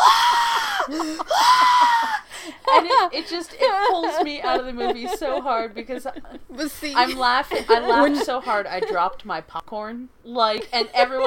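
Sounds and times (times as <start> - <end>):
person imitating a man's terrified scream at a jump scare: 0.0 - 2.3
laughter: 0.0 - 9.2
speech: 2.8 - 11.2.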